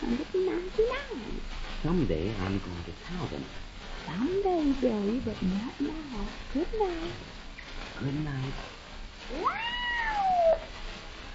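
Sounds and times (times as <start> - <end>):
speech: 0.0 - 7.4, 8.0 - 8.7, 9.3 - 9.8
faint hiss: 0.0 - 11.3
cat yowling: 9.3 - 10.7.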